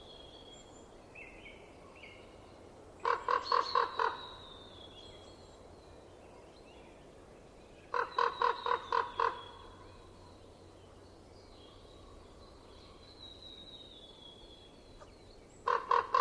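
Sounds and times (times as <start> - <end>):
common raven giving knocking croaks in winter: 3.0 - 4.3, 7.9 - 9.7, 15.6 - 16.2.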